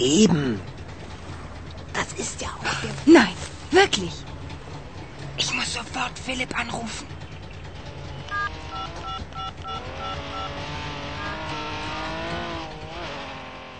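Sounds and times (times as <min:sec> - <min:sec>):
speech: 0:00.0 - 0:00.7, 0:03.1 - 0:04.3, 0:05.7 - 0:07.2
Porsche car engine approaching: 0:00.0 - 0:13.7
short electronic beeps: 0:08.3 - 0:10.6.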